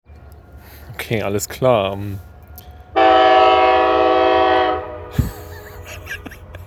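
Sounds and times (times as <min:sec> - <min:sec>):
rail noise of approaching train: 0:00.0 - 0:06.6
speech: 0:00.9 - 0:02.3
approaching train horn blast: 0:03.0 - 0:05.3
laughter: 0:05.1 - 0:06.6.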